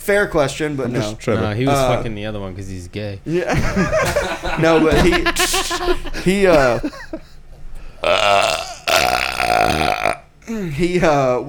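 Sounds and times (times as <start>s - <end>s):
speech: 0.1s - 7.3s, 8.0s - 8.6s, 10.5s - 11.4s
laughter: 3.3s - 7.4s
loud drawn-out gurgling burp: 8.0s - 10.5s.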